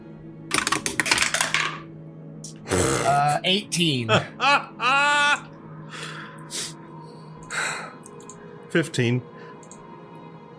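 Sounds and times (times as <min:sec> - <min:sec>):
dice rolled across a tray for a game: 0:00.5 - 0:01.8
speech: 0:03.1 - 0:05.1, 0:08.7 - 0:09.3
laughter: 0:04.1 - 0:05.5.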